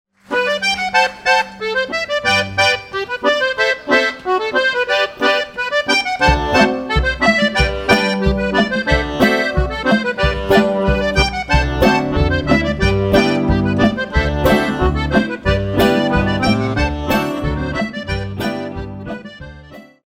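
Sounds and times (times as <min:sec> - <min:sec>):
cumbia music: 0:00.2 - 0:20.0.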